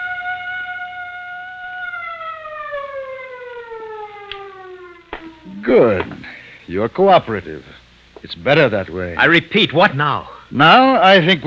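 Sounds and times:
prison alarm siren wailing: 0.0s - 6.0s
speech: 5.6s - 6.1s, 6.7s - 11.4s.

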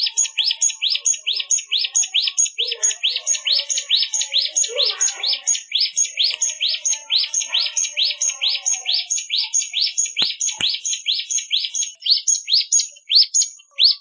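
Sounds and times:
Hill Prinia chirping song: 0.0s - 13.9s
sharp clicks: 10.2s - 10.9s.

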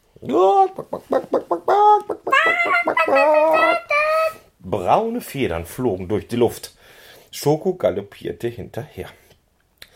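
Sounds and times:
speech: 0.2s - 2.0s, 4.7s - 9.2s
chickens clucking and squawking: 0.8s - 4.4s.

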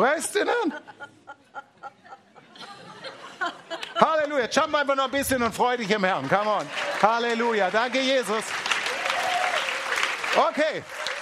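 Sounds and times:
laughter: 0.0s - 4.6s
speech: 0.1s - 1.0s, 4.0s - 8.8s, 10.4s - 11.0s
congregation applauding at a Christian worship conference: 5.5s - 11.1s.

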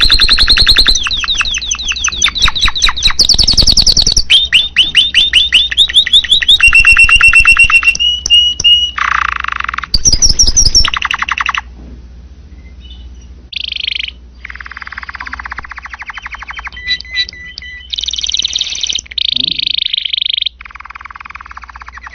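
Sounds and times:
canary singing buzzy trills and rolls as a training recording: 0.0s - 11.7s, 12.5s - 22.1s
steady low hum: 0.0s - 22.1s.

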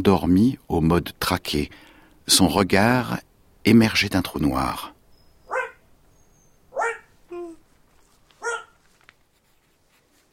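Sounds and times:
speech: 0.0s - 4.9s
dog barking: 5.5s - 5.8s, 6.7s - 7.1s, 8.4s - 8.8s.

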